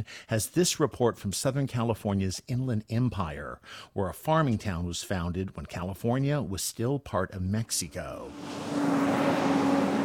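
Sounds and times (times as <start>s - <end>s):
speech: 0.0s - 9.1s
delivery trucks rumbling past on street: 8.1s - 10.0s.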